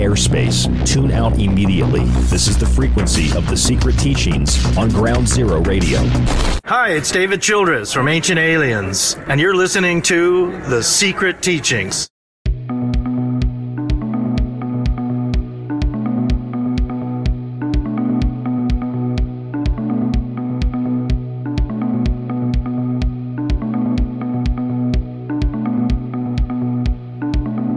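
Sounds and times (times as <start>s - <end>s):
driving beat of crisp percussive hits in radio bumper music: 0.0s - 6.6s, 12.5s - 27.7s
sustained low synth notes in radio bumper music: 0.0s - 6.6s, 12.5s - 27.7s
speech: 0.0s - 12.1s.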